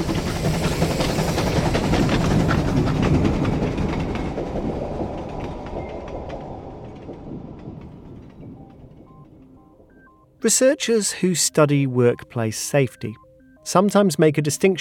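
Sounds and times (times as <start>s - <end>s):
train wheels clattering on rails: 0.0s - 10.1s
train roaring past on rails: 0.0s - 11.6s
speech: 10.4s - 14.8s.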